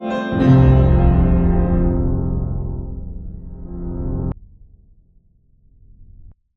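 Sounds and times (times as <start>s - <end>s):
grand piano keys: 0.0s - 4.4s.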